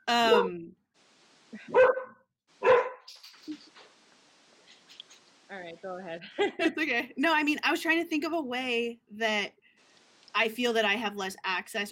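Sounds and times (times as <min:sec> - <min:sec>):
speech: 0:00.1 - 0:00.8, 0:01.5 - 0:02.0, 0:05.5 - 0:09.6, 0:10.4 - 0:11.9
dog barking: 0:01.7 - 0:03.1.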